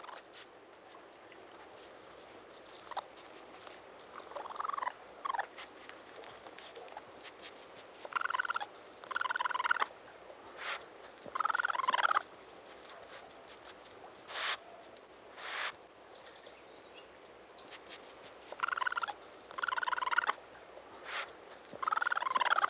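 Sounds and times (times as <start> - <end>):
raccoon giving rapid rattling trills: 0.0 - 12.3, 14.1 - 15.8, 18.5 - 22.6.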